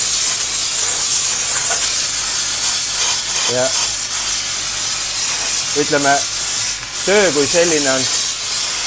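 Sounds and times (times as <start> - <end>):
handheld steam cleaning gun spraying a shoe: 0.0 - 8.8
speech: 3.5 - 4.0, 5.8 - 6.4, 7.1 - 8.1.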